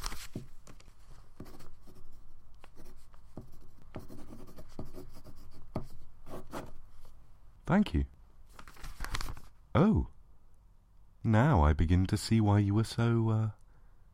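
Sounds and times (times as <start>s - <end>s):
pen scratching on paper: 1.3s - 6.8s
speech: 7.7s - 8.1s, 9.8s - 10.1s, 11.3s - 13.6s.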